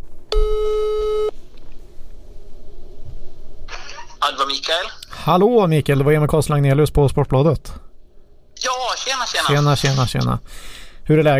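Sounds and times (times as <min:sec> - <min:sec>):
telephone ringing tone during an outgoing call: 0:00.3 - 0:01.3
quiet phone line hiss: 0:00.3 - 0:01.4
speech: 0:04.3 - 0:07.8, 0:08.6 - 0:11.3.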